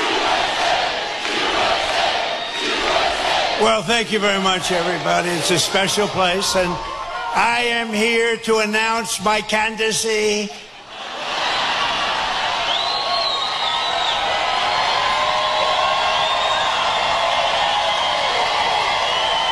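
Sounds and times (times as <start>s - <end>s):
large crowd cheering at a rally in Marietta Georgia: 0.0s - 8.4s, 10.5s - 19.5s
speech: 3.6s - 10.7s
shrill whoops and whistles from a rally crowd: 12.6s - 19.5s.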